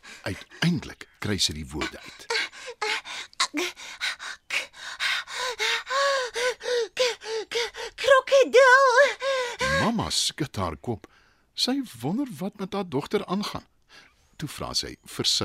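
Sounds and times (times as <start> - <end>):
person acting out panting and gasping for breath: 0.0 - 0.6, 1.8 - 8.0, 9.2 - 9.9
speech: 0.2 - 2.3, 3.5 - 4.0, 9.8 - 13.7, 14.4 - 15.4.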